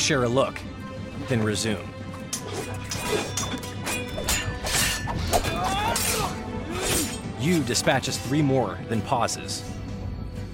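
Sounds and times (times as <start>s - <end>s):
speech: 0.1s - 4.4s, 7.4s - 9.8s
sword blades clashing in a fight: 2.3s - 7.7s.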